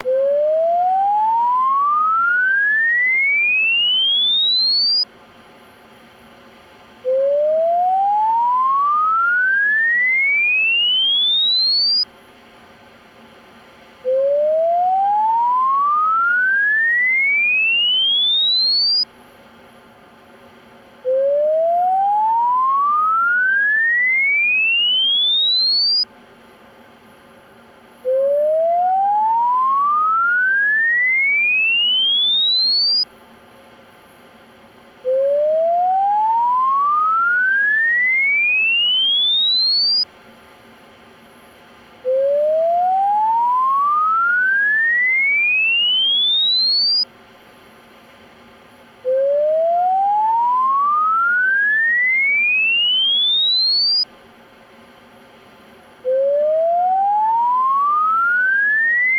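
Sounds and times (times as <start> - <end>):
frequency sweep 500 to 5 kHz: 0.0 - 5.0, 7.0 - 12.0, 14.0 - 19.0, 21.0 - 26.0, 28.0 - 33.1, 35.0 - 40.1, 42.0 - 47.1, 49.0 - 54.1, 56.0 - 59.1.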